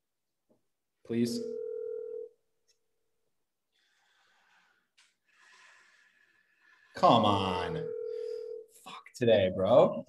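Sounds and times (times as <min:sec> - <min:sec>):
speech: 0:01.1 - 0:01.6, 0:07.0 - 0:07.8, 0:09.2 - 0:10.0
electronic ringback tone of an outgoing phone call: 0:07.8 - 0:08.7.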